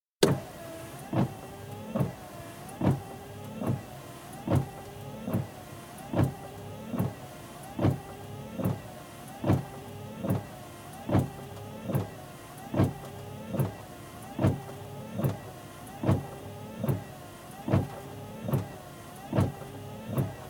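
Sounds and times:
slow windscreen wipers inside a car: 0:00.2 - 0:20.4.

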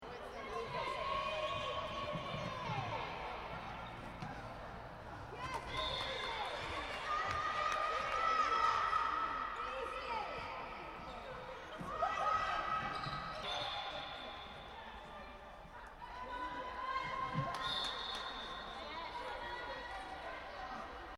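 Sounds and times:
indoor netball game ambience in a reverberant sports hall: 0:00.0 - 0:21.1.

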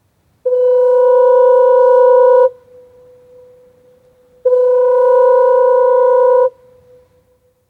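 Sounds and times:
Nautophone lighthouse foghorn from the 1960s sounding: 0:00.4 - 0:07.5.

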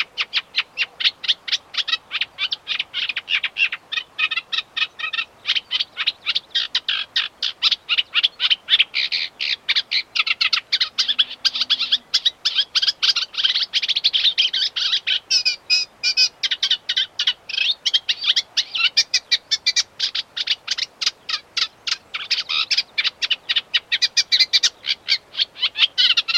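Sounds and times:
unmated male warbler singing: 0:00.0 - 0:26.3
very cows: 0:10.8 - 0:12.2.

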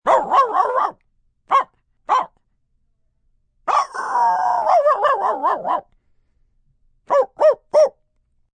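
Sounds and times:
dog barking: 0:00.0 - 0:02.4, 0:03.7 - 0:05.9, 0:07.1 - 0:08.0.

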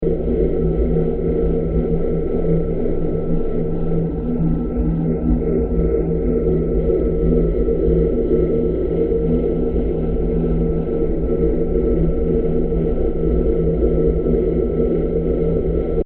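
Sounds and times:
dark UFO ambience sound design: 0:00.0 - 0:16.0.

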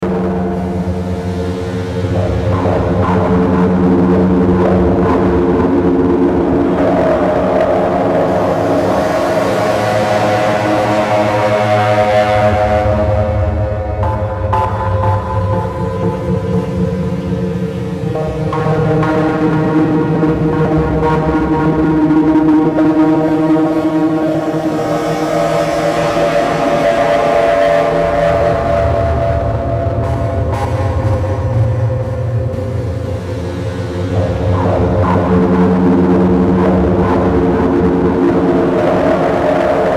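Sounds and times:
eerie fuzzy digital sweeper synth bed: 0:00.0 - 0:39.9.

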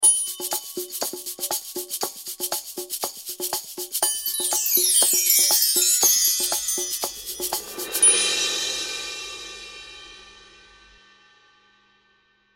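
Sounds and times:
tribal rhythm chimes: 0:00.0 - 0:01.8, 0:04.0 - 0:08.9
light tribal rhythm: 0:00.0 - 0:08.4.

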